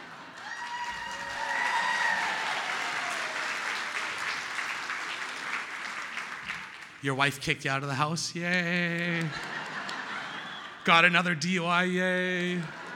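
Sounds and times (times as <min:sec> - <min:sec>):
crowd clapping: 0:00.0 - 0:07.0, 0:08.7 - 0:10.8, 0:11.8 - 0:12.9
speech: 0:07.0 - 0:09.5, 0:10.8 - 0:12.8
laughter: 0:08.6 - 0:12.9.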